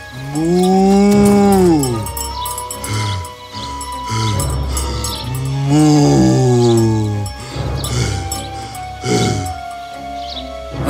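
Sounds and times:
bull working in a field mooing: 0.2 - 2.2, 4.2 - 9.6.

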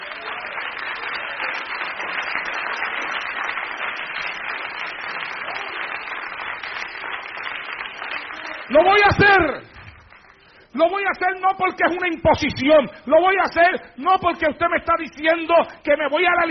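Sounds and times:
audience applauding a preacher at a religious gathering: 0.0 - 10.7
speech: 8.7 - 9.6, 10.8 - 16.5.

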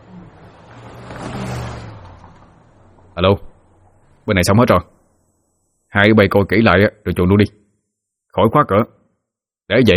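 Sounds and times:
vehicle engine revving as it speeds off: 0.0 - 4.2
speech: 3.2 - 3.5, 4.3 - 5.0, 5.9 - 7.6, 8.3 - 9.0, 9.7 - 9.9.

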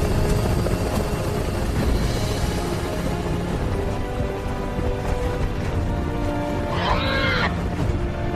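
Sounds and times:
helicopter flying through a forest of huge trees: 0.0 - 8.3.

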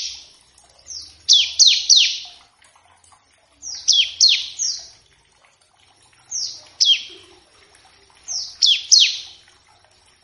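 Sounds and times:
Bar-winged prinia song with sharp loud downward-slurred notes: 0.0 - 2.4, 3.6 - 5.0, 6.3 - 7.3, 8.2 - 9.4.

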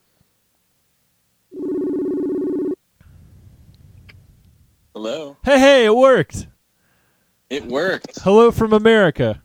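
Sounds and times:
ringback tone on an outgoing phone call: 1.5 - 2.8
speech: 5.0 - 6.5, 7.5 - 9.4.

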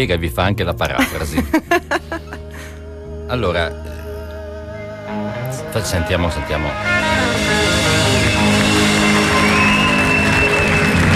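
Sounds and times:
speech: 0.0 - 2.2, 3.3 - 4.0, 5.1 - 7.8
laughter: 1.0 - 2.7
audience applauding: 7.0 - 11.1.

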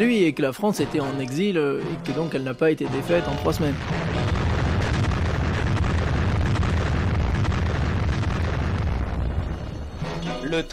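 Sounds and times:
speech: 0.0 - 4.5, 10.5 - 10.7
French atomic bomb explosion rumble: 3.6 - 10.1.

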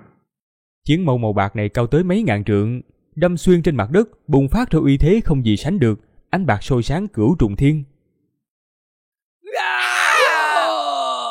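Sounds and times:
speech: 0.8 - 7.9
person screaming in pain amid a battle: 9.4 - 11.2.

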